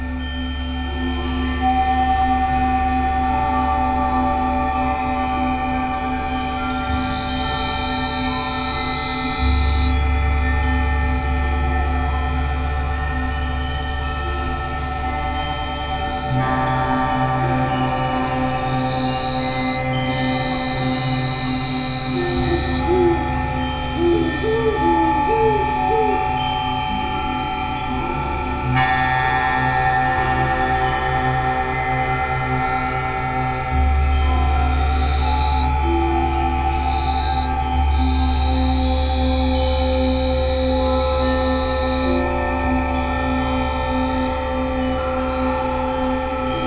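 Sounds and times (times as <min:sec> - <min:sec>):
crickets chirping at night in Baja California Sur: 0:00.0 - 0:46.6
owls hooting: 0:22.1 - 0:27.2.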